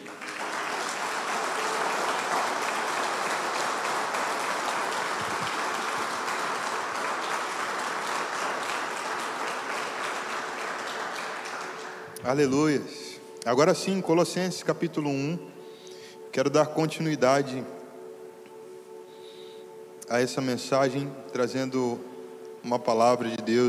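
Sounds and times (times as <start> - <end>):
audience applauding: 0.0 - 13.9
speech: 12.2 - 15.6, 16.4 - 17.8, 20.1 - 23.6.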